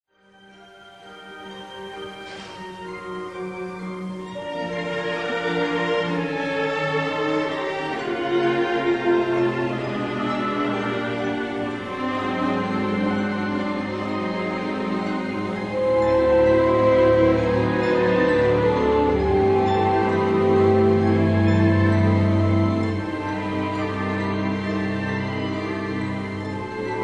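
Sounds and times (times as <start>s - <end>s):
orchestra playing: 0.5s - 27.0s.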